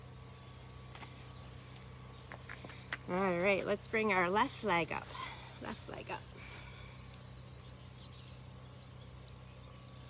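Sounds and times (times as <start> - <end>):
birds chirping outdoors: 0.0 - 10.0
low hum: 0.0 - 10.0
speech: 3.1 - 6.5.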